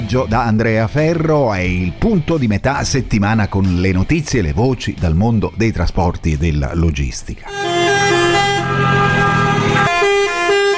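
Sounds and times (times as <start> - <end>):
speech: 0.1 - 7.9
truck air horns honking in a truckers' protest in Rome: 7.5 - 10.7.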